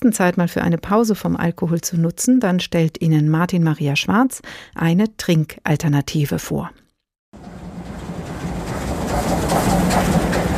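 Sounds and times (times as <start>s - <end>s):
speech: 0.0s - 6.8s
rhythmic clatter: 7.4s - 10.5s
train rumbling past: 7.4s - 10.5s.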